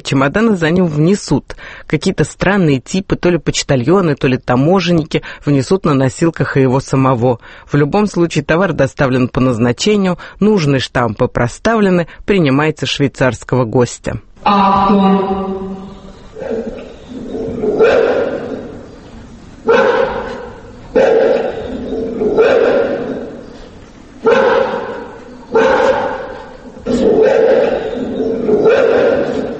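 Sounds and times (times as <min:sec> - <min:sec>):
speech: 0:00.0 - 0:16.8
dog barking frantically and aggressively: 0:16.2 - 0:19.0, 0:19.6 - 0:29.5.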